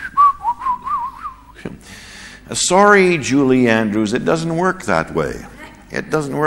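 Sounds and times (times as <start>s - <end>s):
person whistling a short cheerful tune: 0.0s - 1.5s
speech: 1.6s - 6.4s.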